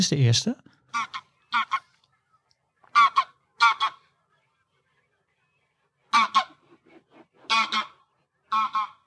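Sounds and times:
speech: 0.0 - 1.1
greylag geese honking overhead: 0.9 - 2.0, 2.8 - 4.2, 6.1 - 9.0.

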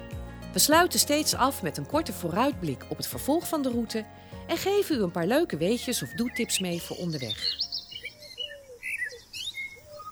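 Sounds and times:
speech: 0.5 - 7.6
soft outdoor hiss: 1.8 - 10.1
small birds chirping and singing with tweets and trills: 2.6 - 10.1.

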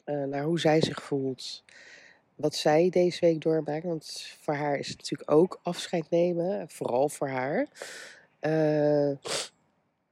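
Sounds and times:
speech: 0.1 - 9.5
person sneezing from hay fever: 9.3 - 9.5.

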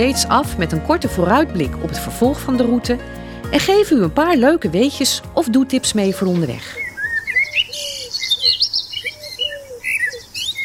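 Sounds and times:
speech: 0.0 - 6.9
small birds chirping and tweeting with trills and whistled notes: 6.1 - 10.6.

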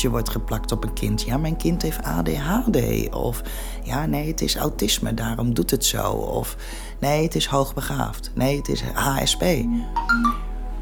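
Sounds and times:
speech: 0.0 - 10.4
faint steady hum: 0.0 - 10.8
mobile phone ringing with three bright electronic notes: 9.6 - 10.4.

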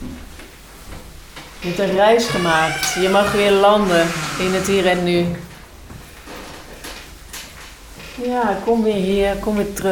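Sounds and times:
steady room hiss: 0.0 - 9.9
door creaking and squeaking: 1.6 - 5.5
speech: 1.6 - 5.5, 8.2 - 9.9.

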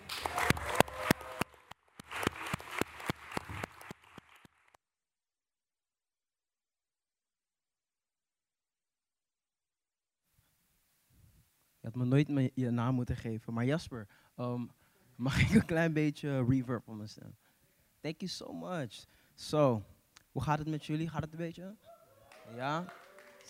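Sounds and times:
crowd clapping: 0.0 - 4.8, 22.3 - 23.4
speech: 11.9 - 17.4, 18.0 - 21.9, 22.5 - 23.4.

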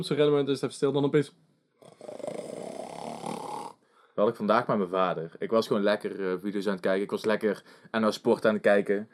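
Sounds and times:
speech: 0.0 - 1.5, 4.2 - 9.1
French bulldog snoring: 1.8 - 3.8.

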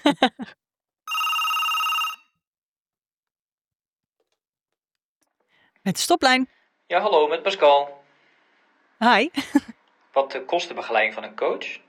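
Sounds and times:
speech: 0.1 - 0.5, 5.8 - 8.0, 9.0 - 11.8
telephone ringing: 1.1 - 2.4.

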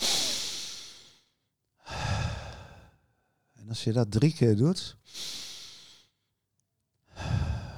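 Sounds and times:
deep breath in and out: 0.0 - 3.5, 5.0 - 6.2, 7.1 - 7.7
speech: 3.7 - 5.4.

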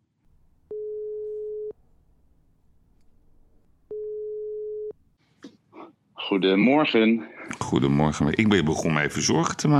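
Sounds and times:
phone ringback tones on an outgoing call: 0.7 - 1.8, 3.9 - 4.9
speech: 6.3 - 9.7.

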